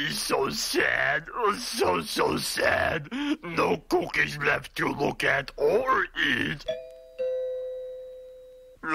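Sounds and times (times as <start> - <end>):
speech: 0.2 - 6.8
doorbell chime: 6.7 - 8.8.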